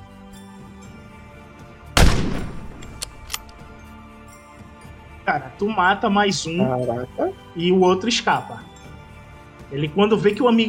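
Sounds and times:
gunshot fired in a video game: 2.0 - 3.6
faint brief clicks: 2.7 - 3.7
speech: 5.3 - 8.7, 9.7 - 10.6.

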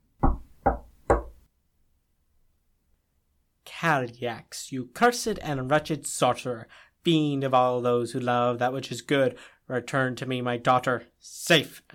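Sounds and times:
loud sharp knocks on a wooden door: 0.2 - 1.4
speech: 3.8 - 11.9.

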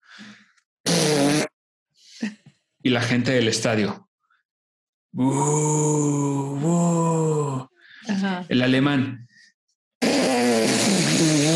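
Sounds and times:
loud buzzing fart noise: 0.8 - 1.6, 10.0 - 11.5
speech: 2.8 - 4.1, 5.2 - 7.6, 8.2 - 9.2
soft breathy hissing sounds: 10.0 - 11.5.

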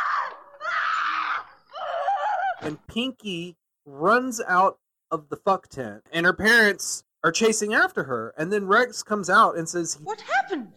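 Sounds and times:
loud shrill shriek: 0.0 - 2.6
speech: 2.6 - 10.7.

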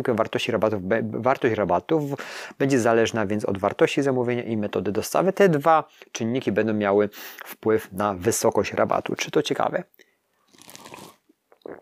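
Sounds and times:
speech: 0.0 - 10.0
person slurping a sip of tea: 10.5 - 11.8
small mouth and cup sounds: 10.5 - 11.8.

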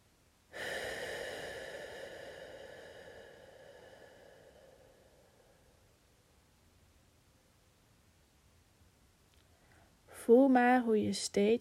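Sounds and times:
deep breath during a guided relaxation: 0.5 - 6.0, 9.5 - 10.0
speech: 10.2 - 11.5.

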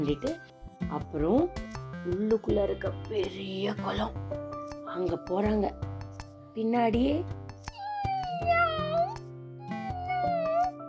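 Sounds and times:
speech: 0.0 - 5.9, 6.6 - 7.4, 8.4 - 9.2
steady rhythmic percussive music: 0.0 - 10.8
kitten meowing: 7.7 - 10.8.

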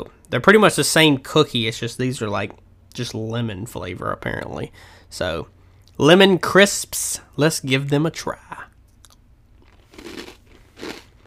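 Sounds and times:
speech: 0.0 - 8.7
biting into hard crunchy lemon crisp cookies: 9.0 - 11.2.

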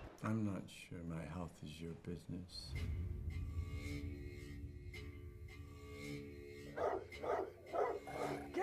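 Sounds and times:
speech: 0.3 - 4.2, 6.8 - 7.5
steady low droning background: 1.8 - 8.6
dogs barking and fighting: 6.7 - 8.5.

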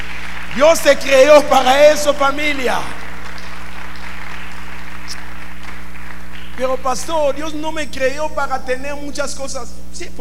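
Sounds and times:
crowd applauding: 0.0 - 7.3
low constant hum: 0.0 - 10.2
speech: 0.6 - 3.0, 6.6 - 10.2.

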